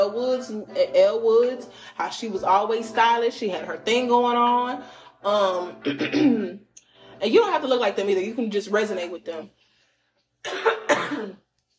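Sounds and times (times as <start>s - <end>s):
speech: 0.4s - 6.6s, 7.2s - 9.6s, 10.4s - 11.4s
harsh breathy dry coughs: 5.8s - 6.6s, 10.4s - 11.4s.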